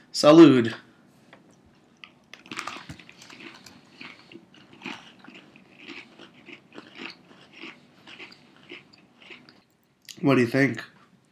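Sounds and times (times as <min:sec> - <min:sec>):
speech: 0:00.2 - 0:00.8, 0:10.3 - 0:10.9
biting and chewing an Oreo cookie: 0:01.5 - 0:10.2.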